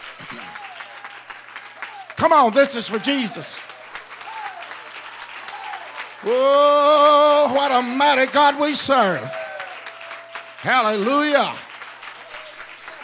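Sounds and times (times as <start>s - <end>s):
audience clapping hands in praise: 0.0s - 13.0s
man speaking and shouting encouragement: 1.9s - 3.7s, 6.2s - 9.7s, 10.6s - 11.6s
speech: 2.2s - 3.7s, 6.2s - 9.4s, 10.6s - 11.7s.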